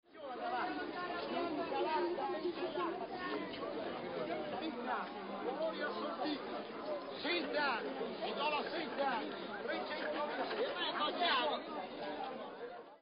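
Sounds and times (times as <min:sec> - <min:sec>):
market ambience: 0:00.1 - 0:13.0.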